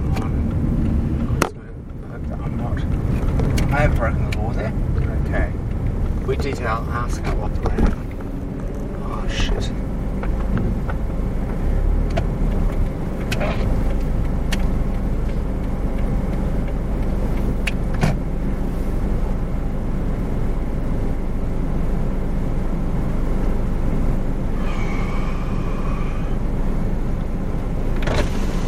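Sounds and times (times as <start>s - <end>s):
rising whine: 0.0s - 28.6s
road and engine rumble inside a moving car: 0.0s - 28.6s
speech: 3.8s - 5.6s, 6.3s - 8.0s, 9.3s - 9.9s.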